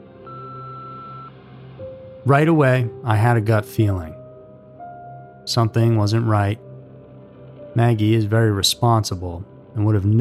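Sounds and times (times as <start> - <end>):
phone keypad touch-tone beep: 0.3 - 1.3
speech: 2.2 - 4.2, 5.5 - 6.6, 7.8 - 10.1.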